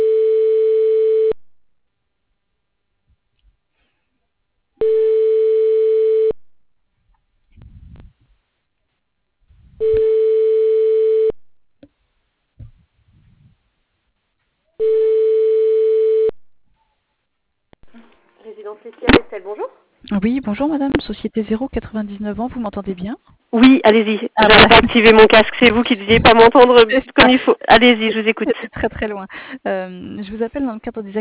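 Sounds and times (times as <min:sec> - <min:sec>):
telephone ringback tone while a call is transferred: 0:00.0 - 0:01.4, 0:04.8 - 0:06.4, 0:09.8 - 0:11.3, 0:14.8 - 0:16.3
speech: 0:20.5 - 0:31.1.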